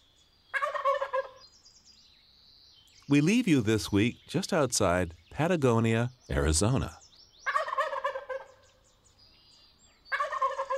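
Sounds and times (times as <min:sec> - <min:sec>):
faint chirping birds: 0:00.0 - 0:10.7
wild turkeys gobbling at dawn outside Patagonia Arizona: 0:00.5 - 0:01.4, 0:07.5 - 0:08.6, 0:10.1 - 0:10.7
speech: 0:03.1 - 0:07.0.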